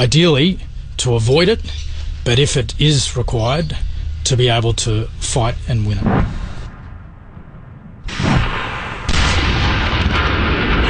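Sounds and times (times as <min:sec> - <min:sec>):
speech: 0:00.0 - 0:06.4
sniper shots in a war exercise: 0:05.9 - 0:10.8
artillery fire during a military war-scenario exercise above a wide valley: 0:06.0 - 0:10.8.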